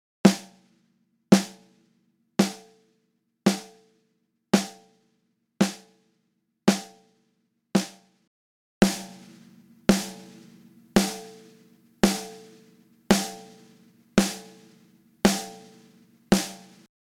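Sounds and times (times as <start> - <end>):
snare drum uncompressed and compressed: 0.3 - 0.6, 1.4 - 1.7, 2.4 - 2.8, 3.5 - 3.9, 4.6 - 4.9, 5.6 - 6.0, 6.7 - 7.0, 7.8 - 8.2, 8.8 - 16.9.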